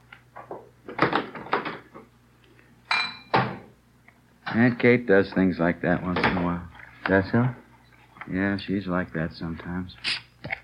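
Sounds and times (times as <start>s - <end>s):
low steady hum: 0.0s - 10.6s
dishes and cutlery clinking during kitchen cleanup: 2.9s - 3.6s
speech: 4.6s - 7.6s, 8.2s - 10.2s.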